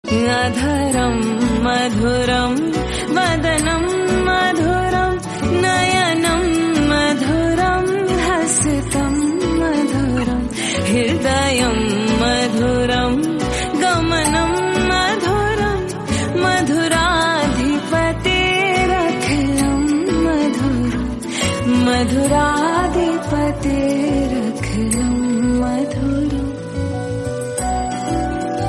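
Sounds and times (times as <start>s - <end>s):
Hindi bhajan devotional song ringtone: 0.0s - 28.6s.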